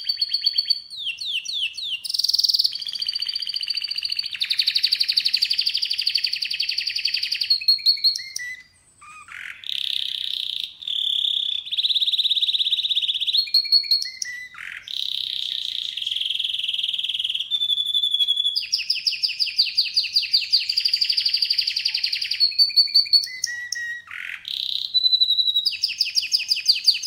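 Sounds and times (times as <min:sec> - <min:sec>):
canary singing sustained trilled tours: 0:00.0 - 0:27.0.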